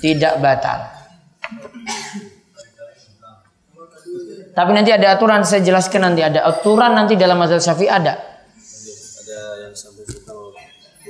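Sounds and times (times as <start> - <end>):
speech: 0.0 - 1.8, 4.1 - 8.3
man clearing throat: 1.5 - 2.9.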